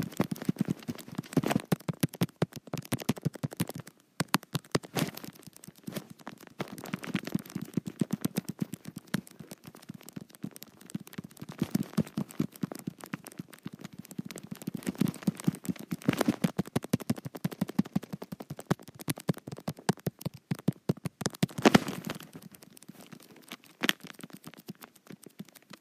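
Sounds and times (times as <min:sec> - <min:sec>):
fingers tapping on a touch screen: 0:00.0 - 0:25.8.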